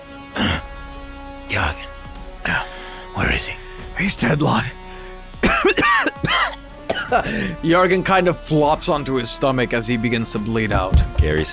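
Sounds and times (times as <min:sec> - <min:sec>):
person coughing harshly: 0:00.4 - 0:00.7, 0:05.4 - 0:07.6
speech: 0:03.4 - 0:04.8, 0:07.1 - 0:11.5.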